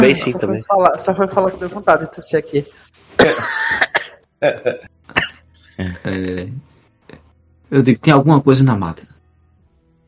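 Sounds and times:
speech: 0:00.1 - 0:03.8, 0:04.4 - 0:04.9, 0:05.8 - 0:06.7, 0:07.7 - 0:09.1
person coughing: 0:03.2 - 0:05.4
laughter: 0:04.4 - 0:04.9.

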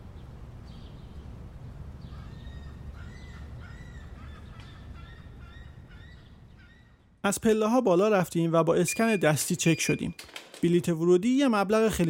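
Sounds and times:
steady low rumble of noise: 0:00.0 - 0:07.2
birds chirping in a leafy outdoor space: 0:02.0 - 0:07.6, 0:08.7 - 0:10.2
harsh crow-like caws in a leafy outdoor space: 0:02.1 - 0:06.9
speech: 0:07.2 - 0:12.0.

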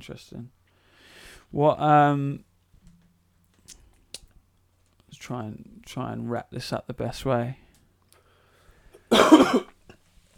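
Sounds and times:
speech: 0:00.0 - 0:00.6, 0:01.5 - 0:02.5, 0:05.1 - 0:07.6, 0:09.3 - 0:09.7
single harsh cough: 0:09.1 - 0:09.8.

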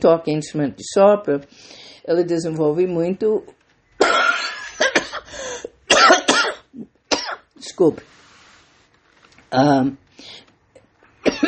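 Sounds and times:
speech: 0:00.0 - 0:03.6, 0:07.7 - 0:08.1, 0:09.5 - 0:10.0
person coughing from choking: 0:04.0 - 0:05.3, 0:05.9 - 0:07.4, 0:11.2 - 0:11.4.

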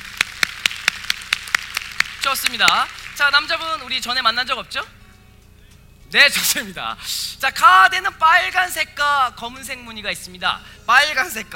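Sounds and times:
audience at a card magic show clapping: 0:00.0 - 0:03.5
speech: 0:02.2 - 0:05.0, 0:06.1 - 0:11.5.

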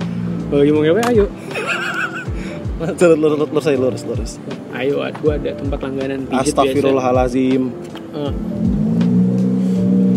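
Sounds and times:
speech: 0:00.5 - 0:01.8, 0:02.8 - 0:08.8
laughter: 0:01.4 - 0:02.4
small car engine revving hard as it races past: 0:08.3 - 0:10.1.

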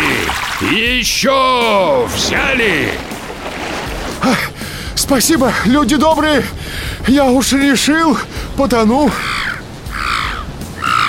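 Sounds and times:
speech: 0:00.6 - 0:03.1, 0:04.2 - 0:09.5
raven cawing: 0:08.3 - 0:11.0.

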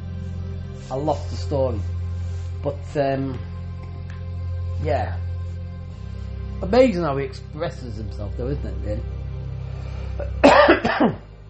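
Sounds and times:
speech: 0:00.9 - 0:02.0, 0:02.6 - 0:03.5, 0:04.8 - 0:05.3, 0:06.6 - 0:09.1, 0:10.2 - 0:11.3
person coughing harshly: 0:10.2 - 0:11.2.

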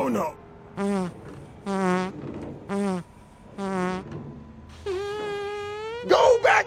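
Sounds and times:
loud buzzy farts: 0:00.8 - 0:04.2, 0:04.8 - 0:06.0.

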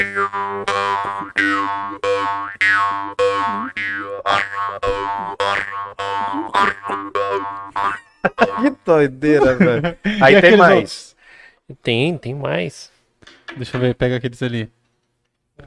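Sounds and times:
forged metal jaw harp from Ukraine twanging: 0:00.0 - 0:08.7
laughter: 0:08.0 - 0:10.9
speech: 0:08.6 - 0:11.1, 0:11.7 - 0:12.9, 0:13.5 - 0:14.8.

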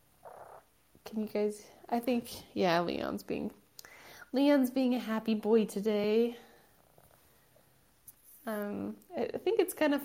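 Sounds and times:
domestic cat purring: 0:00.0 - 0:01.2, 0:06.4 - 0:07.8
speech: 0:01.1 - 0:03.6, 0:04.3 - 0:06.5, 0:08.4 - 0:10.0.

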